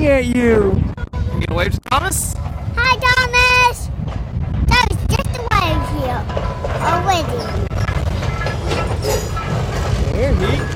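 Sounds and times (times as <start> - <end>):
speech: 0.0 - 3.9, 10.2 - 10.7
train rumbling along tracks in Baltimore: 0.8 - 10.7
faint metallic rattling: 5.6 - 10.7.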